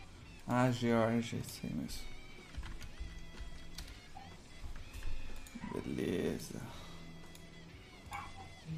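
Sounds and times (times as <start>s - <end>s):
speech: 0.5s - 2.2s, 5.9s - 6.8s
dog barking: 8.1s - 8.6s.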